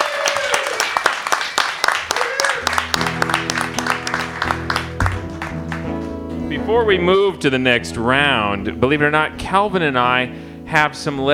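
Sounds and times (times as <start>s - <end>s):
applause from a small group: 0.0s - 6.1s
steady low musical tone: 2.8s - 11.3s
speech: 6.7s - 11.3s.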